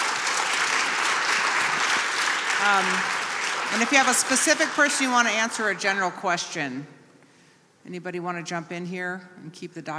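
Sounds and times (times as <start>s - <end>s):
audience applause at a question-and-answer discussion: 0.0s - 5.8s
speech: 2.6s - 7.0s, 7.9s - 9.9s.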